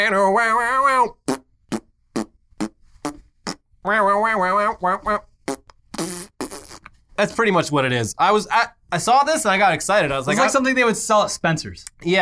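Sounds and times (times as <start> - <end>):
speech: 0.0 - 1.2, 3.8 - 5.3, 7.2 - 12.1
guitar pedal turning guitar tone into fart noises: 1.2 - 3.6, 5.4 - 6.9.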